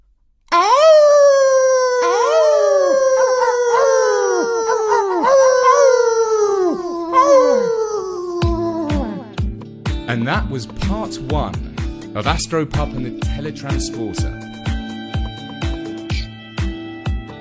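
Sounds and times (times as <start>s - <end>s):
two dogs howling together: 0.5s - 9.4s
speech: 10.2s - 14.7s.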